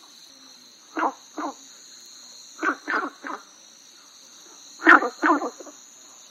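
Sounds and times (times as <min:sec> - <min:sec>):
Günther's brown frog croaking in short rasping bursts: 0:00.9 - 0:01.6, 0:02.5 - 0:03.6, 0:04.4 - 0:06.0.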